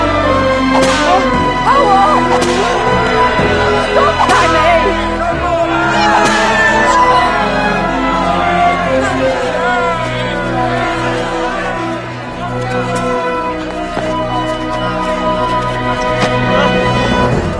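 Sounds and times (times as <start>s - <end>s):
loud angry crowd shouting and yelling: 0.0s - 17.4s.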